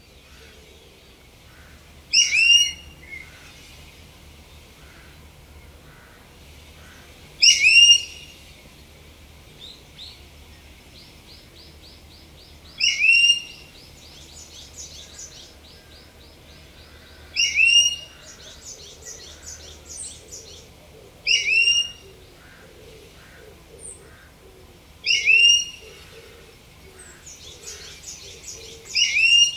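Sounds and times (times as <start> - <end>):
Ishigaki brown-eared bulbul calling: 1.5 - 3.6, 12.7 - 29.5.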